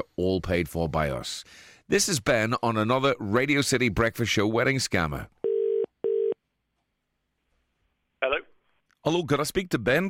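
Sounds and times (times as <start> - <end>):
speech: 0.0 - 5.4, 9.0 - 10.0
telephone call ringing out on the line: 5.4 - 6.4.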